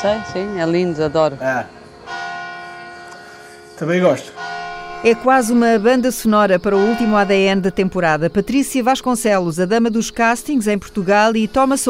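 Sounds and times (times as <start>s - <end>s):
speech: 0.0s - 1.8s, 3.8s - 11.8s
church bell beside a house striking: 0.0s - 8.2s.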